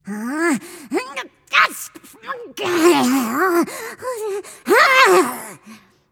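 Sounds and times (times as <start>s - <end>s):
person grumbling nonverbally: 2.1s - 5.7s.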